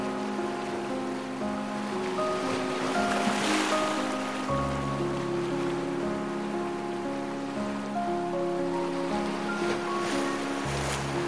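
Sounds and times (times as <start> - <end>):
hiss of ocean waves: 0.0 - 11.2
slow gentle piano with sustained chords and deep bass notes: 0.0 - 11.2.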